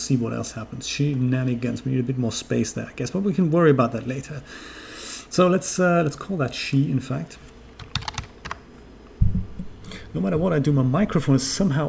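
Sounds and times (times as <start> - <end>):
speech: 0.1 - 7.5, 10.1 - 11.8
typing on a computer keyboard: 7.8 - 8.6
dull low thump: 9.2 - 9.8.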